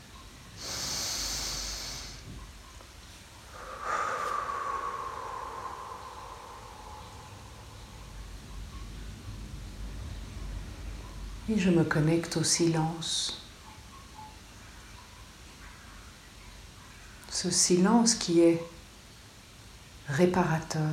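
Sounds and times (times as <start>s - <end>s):
deep breath in and out: 0.6s - 2.3s, 3.4s - 8.9s
speech: 11.5s - 13.4s, 17.4s - 18.8s, 20.1s - 20.9s.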